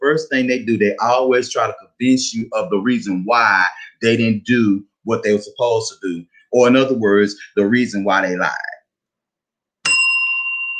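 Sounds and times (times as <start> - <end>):
speech: 0.1 - 8.7
handheld bell ringing: 9.8 - 10.7.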